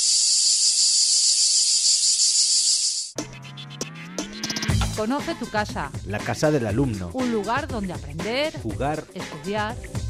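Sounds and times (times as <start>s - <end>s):
cicada buzzing: 0.0s - 3.2s
speech: 5.0s - 10.0s.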